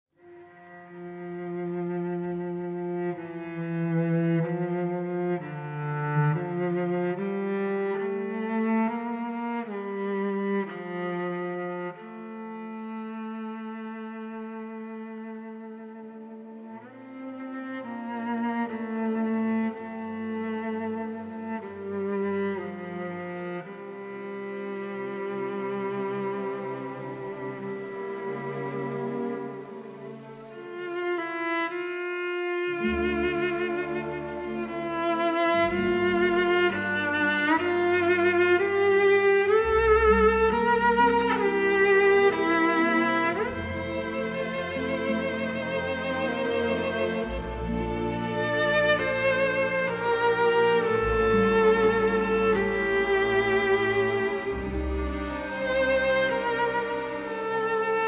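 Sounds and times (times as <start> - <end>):
cello: 0.1 - 58.0.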